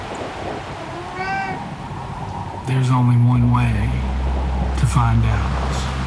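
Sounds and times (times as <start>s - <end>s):
low rumble: 0.0s - 6.0s
cat meowing: 0.8s - 1.7s
speech: 2.7s - 4.1s, 4.8s - 5.6s.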